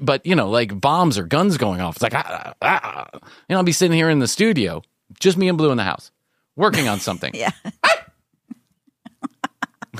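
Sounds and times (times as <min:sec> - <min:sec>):
speech: 0:00.0 - 0:08.0
female dog on a bed barking: 0:07.8 - 0:08.2.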